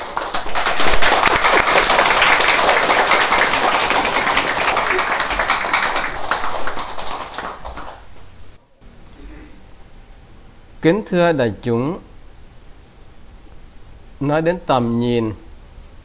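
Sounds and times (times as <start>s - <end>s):
crowd clapping: 0.0s - 8.6s
speech: 10.8s - 12.1s, 14.2s - 15.4s.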